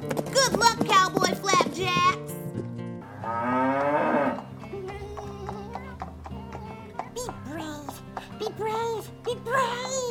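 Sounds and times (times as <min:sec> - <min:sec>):
clip-clopping hoofbeats: 0:00.0 - 0:10.0
cow mooing: 0:03.0 - 0:04.5.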